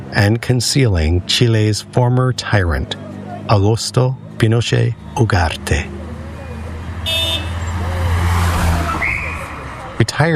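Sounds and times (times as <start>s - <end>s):
limousine convoy driving past: 0.0s - 10.3s
traffic noise: 0.0s - 10.3s
speech: 0.1s - 6.0s, 10.2s - 10.3s
car horn toot: 7.0s - 8.2s.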